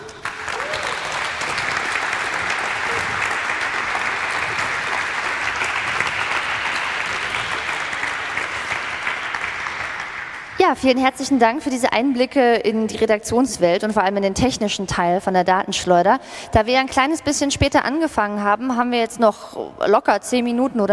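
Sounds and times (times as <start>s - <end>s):
large audience applauding a speaker finishing a talk: 0.0s - 10.6s
speech: 10.7s - 20.9s.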